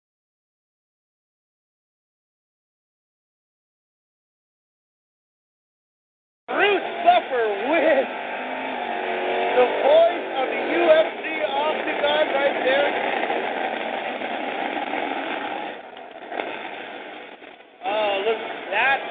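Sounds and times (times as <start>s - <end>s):
trophy truck engine idling roughly with pops and sputters at race qualifying: 6.5s - 19.1s
person talking: 9.6s - 13.0s, 17.8s - 19.1s.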